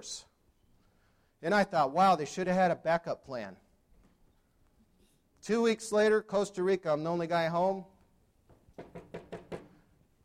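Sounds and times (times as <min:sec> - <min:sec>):
speech: 0:00.0 - 0:00.3, 0:01.4 - 0:03.6, 0:05.4 - 0:07.9
faint noise: 0:00.0 - 0:10.2
firm knocks on a door by agents at a home in Costa Rica: 0:08.5 - 0:09.8.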